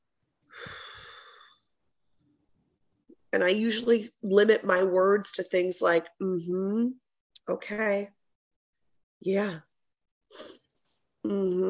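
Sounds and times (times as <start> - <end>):
deep cleansing breath: 0.5 - 1.8
speech: 3.3 - 8.2, 9.2 - 9.7, 10.3 - 10.6, 11.2 - 11.6.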